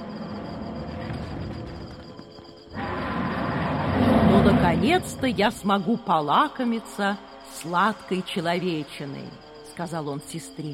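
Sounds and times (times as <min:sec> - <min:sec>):
rakshasa demon roaring: 0:02.8 - 0:05.2
speech: 0:04.7 - 0:10.7.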